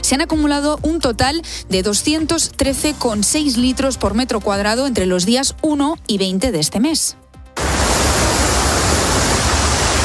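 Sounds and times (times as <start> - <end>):
speech: 0.0 - 7.2
swollen river rushing: 7.6 - 10.0.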